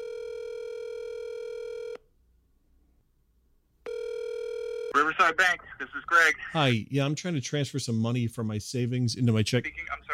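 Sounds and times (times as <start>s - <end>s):
telephone tone before a call to a bank: 0.0s - 2.0s, 3.8s - 5.1s
speech: 5.0s - 10.1s.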